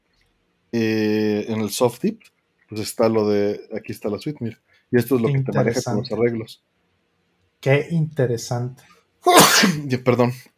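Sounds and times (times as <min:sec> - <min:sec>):
speech: 0:00.7 - 0:06.7, 0:07.6 - 0:10.5
person sneezing: 0:09.3 - 0:09.9.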